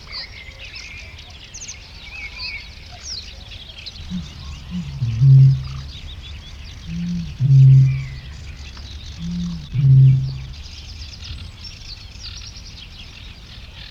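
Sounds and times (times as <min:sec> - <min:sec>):
Eurasian bittern (Botaurus stellaris) booming: 0:04.1 - 0:08.5, 0:09.2 - 0:10.6.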